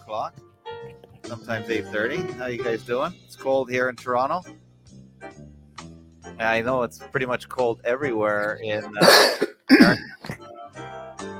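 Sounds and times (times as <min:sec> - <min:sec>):
speech: 0:00.1 - 0:04.6, 0:06.4 - 0:10.1
person coughing: 0:09.0 - 0:10.4
throat clearing: 0:09.0 - 0:10.4.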